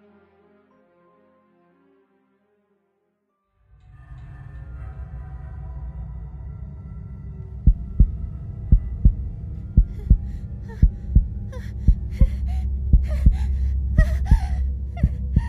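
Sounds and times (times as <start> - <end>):
loud heartbeat thudding: 7.6 - 15.4
woman's heavy ragged panicked breathing with gasps, buried underground: 8.9 - 15.4.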